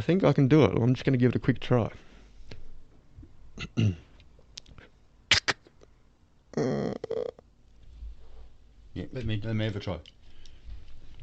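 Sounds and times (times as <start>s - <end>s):
speech: 0.0s - 2.1s, 3.6s - 4.0s, 6.6s - 7.3s, 9.0s - 10.2s
person imitating a creaking door opening with their mouth: 6.6s - 7.5s.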